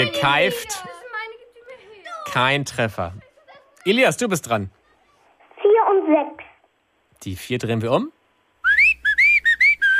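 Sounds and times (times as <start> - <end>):
speech: 0.0 - 1.0, 2.3 - 4.8, 5.8 - 6.4, 7.2 - 8.2
bright cheerful whistled tune in a bouncy rhythm: 8.6 - 9.9.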